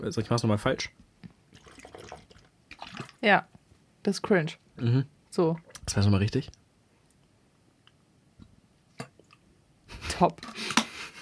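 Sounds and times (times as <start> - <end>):
speech: 0.0 - 1.1, 3.2 - 6.6, 10.2 - 10.6
water glugging from a tilted bottle while drinking: 1.5 - 3.2.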